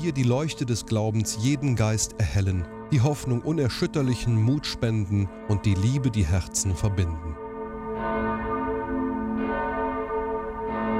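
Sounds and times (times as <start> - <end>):
speech: 0.0 - 7.4
large church bell rung automatically: 0.0 - 10.9.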